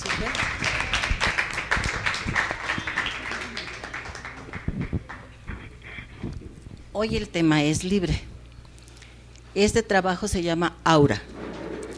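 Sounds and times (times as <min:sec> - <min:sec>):
audience applauding to welcome a writer: 0:00.0 - 0:05.4
speech: 0:07.0 - 0:08.3, 0:09.6 - 0:11.3.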